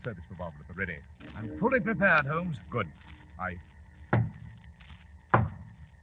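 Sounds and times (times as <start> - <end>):
speech: 0.0 - 3.7
solid knocks on a door at midnight: 4.1 - 4.4, 5.3 - 5.7.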